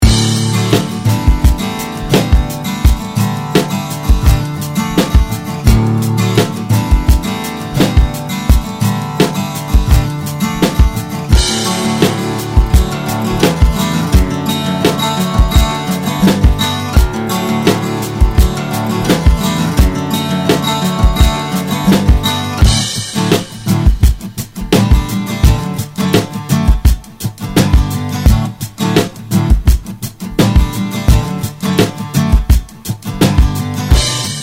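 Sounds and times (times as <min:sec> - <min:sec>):
Drop D guitars: 0:00.0 - 0:34.4.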